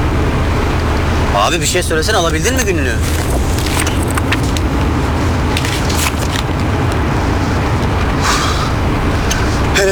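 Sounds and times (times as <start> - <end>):
car interior road drone while driving: 0.0 - 9.9
speech: 1.5 - 3.6.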